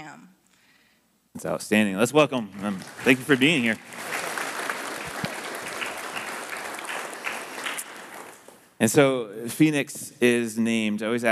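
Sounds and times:
speech: 0:01.4 - 0:04.2, 0:08.8 - 0:11.3
audience applause: 0:02.5 - 0:08.7.

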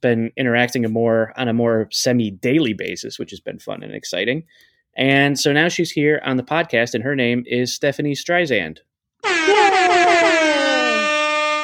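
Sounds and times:
speech: 0:00.0 - 0:10.4
loud sustained brassy air horn blast: 0:09.2 - 0:11.6.

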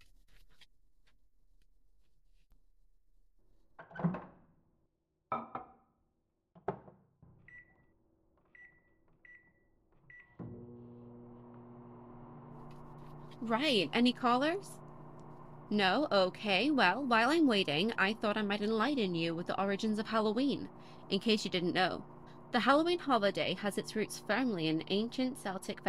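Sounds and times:
microwave oven humming while making popcorn: 0:10.4 - 0:25.8
speech: 0:13.4 - 0:14.8, 0:15.7 - 0:25.8.

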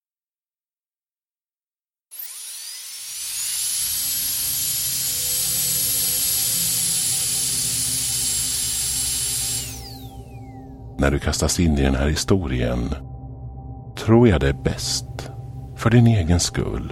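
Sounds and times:
high-pitched dentist's drill whining: 0:02.1 - 0:10.8
speech: 0:11.0 - 0:13.1, 0:14.1 - 0:16.8.

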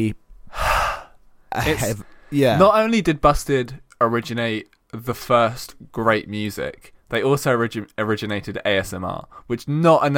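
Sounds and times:
speech: 0:00.0 - 0:00.6, 0:01.5 - 0:10.1
heavy breathing into a microphone: 0:00.5 - 0:02.5.

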